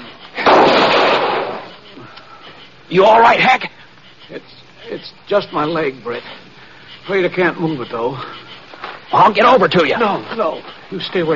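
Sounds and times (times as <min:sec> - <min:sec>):
gunshot fired from behind a totem pole outside a trading post: 0:00.4 - 0:01.7
speech: 0:02.9 - 0:06.4, 0:07.0 - 0:08.4, 0:09.1 - 0:11.3.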